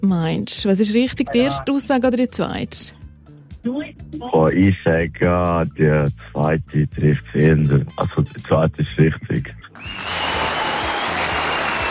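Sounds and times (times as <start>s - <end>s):
speech: 0.0s - 3.0s, 3.6s - 10.1s
steady applause from a crowd: 9.8s - 11.9s.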